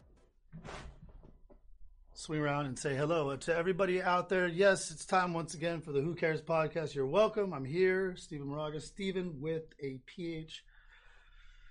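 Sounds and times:
chair thumps and creaks as someone settles into it: 0:00.0 - 0:01.6
chair being pulled scraping across the floor: 0:00.6 - 0:01.3
speech: 0:02.2 - 0:10.7.

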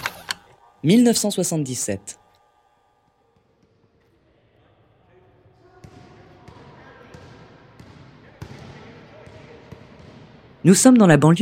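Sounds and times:
indistinct voices: 0:00.0 - 0:03.3
speech: 0:00.8 - 0:02.2, 0:10.7 - 0:11.4
basketball bouncing on a hard court at a university basketball game: 0:05.8 - 0:10.4.

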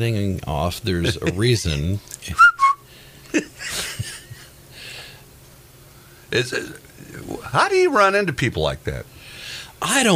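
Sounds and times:
speech: 0:00.0 - 0:02.5, 0:06.3 - 0:09.1, 0:09.8 - 0:10.1
person whistling chirps imitating a cockatoo: 0:02.4 - 0:02.8
breathy chuckles: 0:03.3 - 0:04.5.

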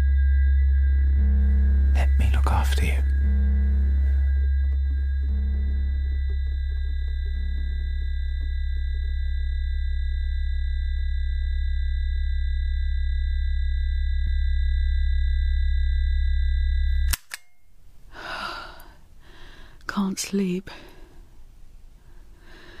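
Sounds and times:
deep low rumble: 0:00.0 - 0:17.2
high-pitched tinnitus ringing tone: 0:00.0 - 0:17.2
speech: 0:02.6 - 0:03.1, 0:20.2 - 0:20.9
sleeping person's heavy breathing: 0:18.1 - 0:19.8, 0:22.0 - 0:22.7.

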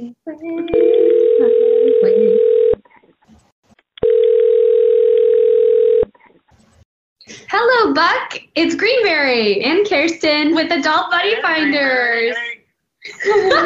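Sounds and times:
telephone tone while connecting a caller to a call-in line: 0:00.8 - 0:02.8, 0:04.0 - 0:06.1
speech: 0:08.0 - 0:12.5, 0:13.2 - 0:13.6
laughter: 0:12.2 - 0:13.6.

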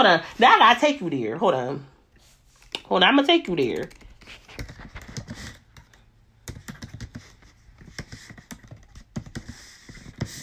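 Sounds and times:
speech: 0:00.0 - 0:01.9, 0:02.9 - 0:04.7
typing on a computer keyboard: 0:03.4 - 0:09.6.

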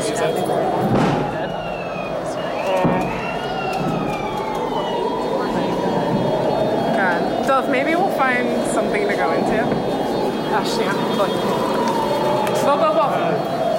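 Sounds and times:
emergency vehicle siren wailing through a busy street: 0:00.0 - 0:13.7
steady traffic noise: 0:00.0 - 0:13.7.

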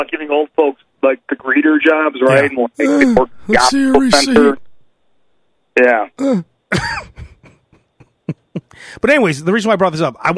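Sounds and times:
speech: 0:00.0 - 0:04.6, 0:05.8 - 0:07.2, 0:08.3 - 0:10.3
person coughing: 0:06.2 - 0:07.5.

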